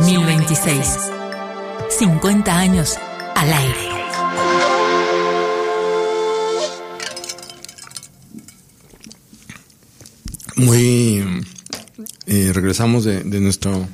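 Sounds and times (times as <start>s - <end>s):
sustained tonal note: 0.0s - 7.9s
speech: 0.1s - 1.2s, 1.8s - 3.9s, 10.6s - 11.5s, 12.3s - 13.9s
radio host taking a sip of water: 8.2s - 10.6s.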